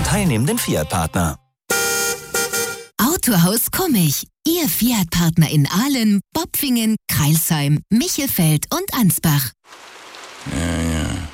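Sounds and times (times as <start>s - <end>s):
speech: 0.1s - 1.4s, 3.0s - 11.3s
loud steady hiss of rain: 9.7s - 11.3s.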